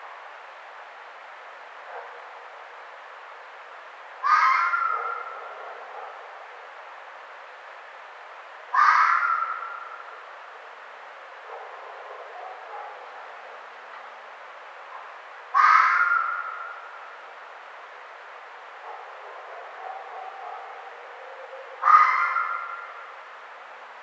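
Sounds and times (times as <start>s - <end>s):
red fox calling with raspy, scratchy cries: 4.2s - 5.6s, 8.7s - 10.0s, 15.5s - 16.9s, 18.9s - 23.1s.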